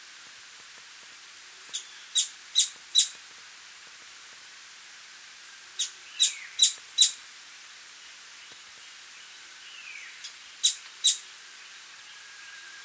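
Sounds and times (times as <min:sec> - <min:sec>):
quiet hiss: 0:00.0 - 0:12.8
streak-capped treehunter calling sharp high chips in Ecuador: 0:01.7 - 0:03.2, 0:05.8 - 0:07.2, 0:10.1 - 0:11.2.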